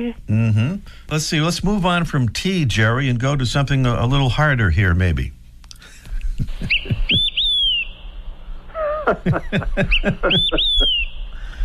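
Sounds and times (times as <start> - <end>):
speech: 0.0 - 5.4, 9.1 - 11.0
laughter: 5.8 - 7.3, 8.8 - 11.0
other bird calls: 6.5 - 9.1, 9.8 - 11.6
olive-sided flycatcher singing whistled phrases: 6.6 - 8.2, 9.8 - 11.6.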